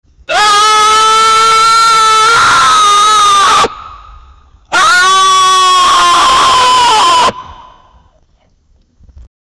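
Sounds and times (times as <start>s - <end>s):
man screaming ohh very loudly: 0.3s - 3.8s, 4.7s - 7.4s.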